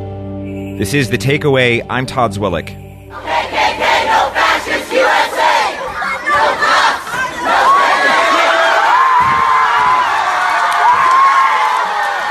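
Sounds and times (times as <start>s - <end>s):
speech: 0.8s - 2.8s
crowd chanting rhythmically: 3.1s - 8.9s
large outdoor protest crowd roaring and cheering as a monument is pulled down: 3.1s - 12.3s.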